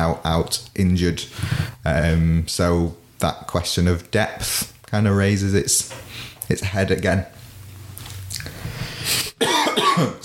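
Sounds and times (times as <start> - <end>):
speech: 0.0 - 7.4
person coughing after eating rice cakes: 9.3 - 10.2.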